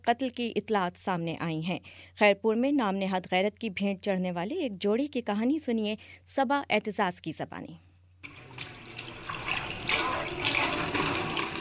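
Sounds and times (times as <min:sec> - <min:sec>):
speech: 0:00.0 - 0:07.9
dishes being washed at a home kitchen sink: 0:08.2 - 0:11.5
running tap water splashing at a home kitchen sink: 0:08.2 - 0:11.5.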